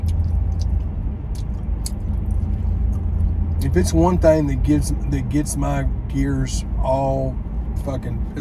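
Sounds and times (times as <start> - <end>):
person imitating loud wet open-mouth chewing: 0.0 - 3.8
steady low rumble: 0.0 - 8.4
speech: 3.7 - 8.4.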